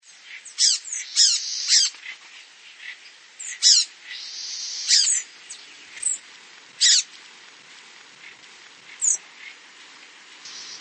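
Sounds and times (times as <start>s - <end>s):
bird song of sharp high sweeping notes and buzzy trilled bursts: 0.0s - 6.2s, 10.5s - 10.7s.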